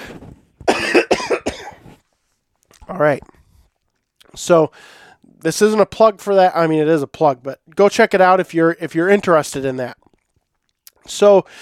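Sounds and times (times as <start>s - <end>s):
person coughing: 0.7s - 1.9s
speech: 2.9s - 3.4s, 4.3s - 10.0s, 11.1s - 11.6s.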